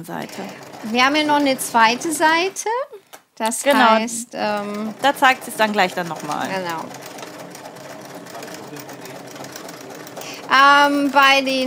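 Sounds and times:
speech: 0.0 - 7.1, 10.5 - 11.6
sewing machine backstitching a garment leg seam: 0.0 - 11.6.

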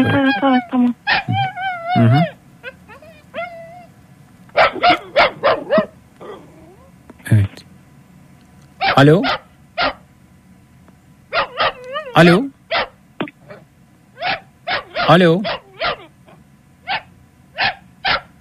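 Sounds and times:
dog barking: 0.0 - 3.8, 4.6 - 6.7, 8.8 - 10.0, 11.3 - 13.6, 14.2 - 16.1, 16.8 - 18.3
speech: 0.6 - 1.4, 2.0 - 2.3, 9.0 - 9.4, 12.2 - 12.4, 15.1 - 15.5.

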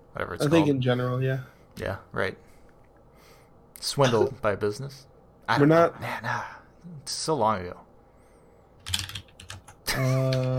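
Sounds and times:
speech: 0.2 - 2.5, 3.8 - 7.8, 9.9 - 10.5
typing on a mechanical keyboard: 8.8 - 9.8.

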